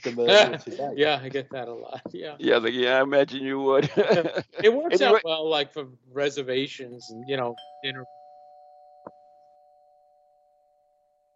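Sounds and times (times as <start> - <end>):
laughter: 0.0 - 1.0, 3.0 - 5.3
speech: 0.0 - 8.2
doorbell ringing: 7.1 - 11.3.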